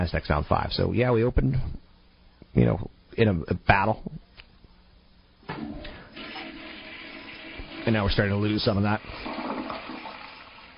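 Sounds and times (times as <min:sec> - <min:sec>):
speech: 0:00.0 - 0:01.8, 0:02.5 - 0:04.2, 0:07.9 - 0:09.4
toilet flushing: 0:05.5 - 0:10.7.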